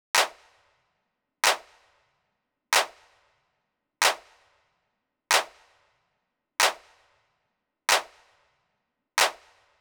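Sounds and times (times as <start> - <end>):
hip hop claps: 0.2 - 0.4, 1.4 - 1.7, 2.8 - 3.0, 4.0 - 4.2, 5.3 - 5.6, 6.6 - 6.9, 7.9 - 8.1, 9.2 - 9.5.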